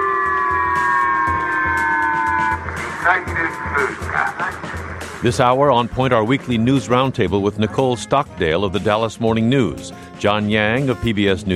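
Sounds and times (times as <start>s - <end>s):
missile warning siren: 0.0s - 3.8s
low rhythmic rumble: 0.0s - 7.7s
loud public-address voice: 2.8s - 11.5s
speech: 3.1s - 11.5s.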